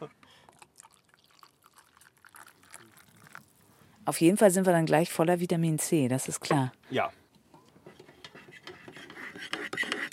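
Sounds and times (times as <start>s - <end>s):
hot water poured onto tea at a kiosk: 0.5s - 3.7s
speech: 4.0s - 7.2s.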